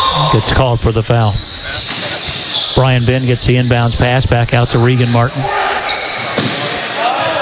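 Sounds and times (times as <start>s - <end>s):
continuous fast commentary: 0.2s - 1.5s, 2.7s - 5.4s
speech: 0.3s - 1.8s, 2.8s - 5.6s
basketball dribbled during a game: 6.2s - 7.3s.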